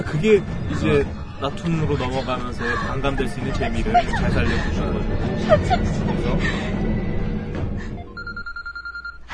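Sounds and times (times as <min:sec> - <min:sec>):
speech: 0:00.1 - 0:07.0
laughter: 0:01.5 - 0:06.8
telephone bell ringing with a high electronic trill: 0:08.2 - 0:09.2.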